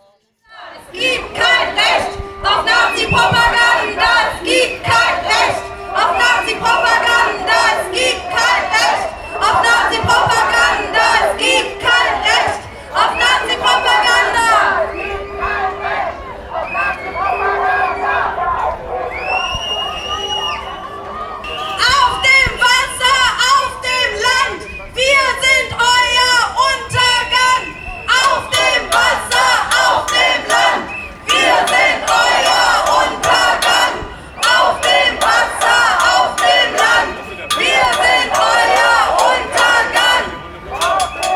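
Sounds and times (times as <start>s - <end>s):
protesters chanting slogans from boats on a river: 0.0s - 41.3s
scattered cheers and calls: 0.5s - 41.3s.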